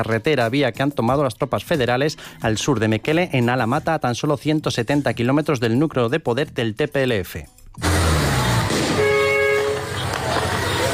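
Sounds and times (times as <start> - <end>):
speech: 0.0 - 7.9
loud horn blaring: 7.8 - 10.9
military combat vehicles rumbling through a busy street in Alamata Ethiopia: 7.8 - 10.9
outdoor street noise in Alamata Ethiopia: 7.8 - 10.9.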